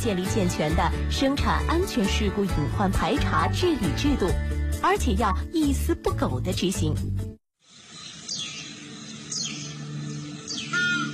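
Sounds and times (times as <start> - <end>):
speech: 0.0 - 7.4
bird calls of a crested ibis, a golden eagle and a blood pheasant: 7.8 - 11.1.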